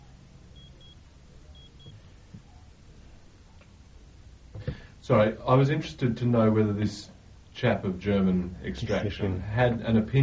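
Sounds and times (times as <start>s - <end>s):
steady low rumble of room noise: 0.0s - 10.2s
faint electronic alarm beeping in short high tones: 0.5s - 2.0s
speech: 5.0s - 10.2s.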